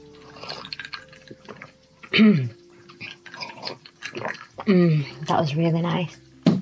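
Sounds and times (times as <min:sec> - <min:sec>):
thirsty person gulping and slurping a drink: 0:00.2 - 0:05.3
speech: 0:02.2 - 0:02.6, 0:04.7 - 0:06.2.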